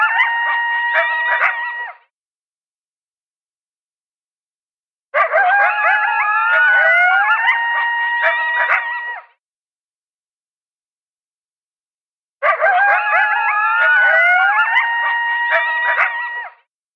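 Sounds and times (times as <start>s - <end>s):
lone coyote howling and yipping: 0.0s - 2.0s, 5.2s - 9.3s, 12.4s - 16.6s.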